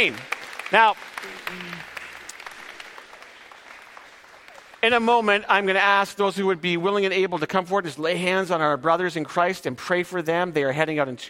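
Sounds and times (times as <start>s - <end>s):
speech: 0.0s - 1.9s, 4.8s - 11.2s
faint audience applause at a church gathering: 0.0s - 5.7s.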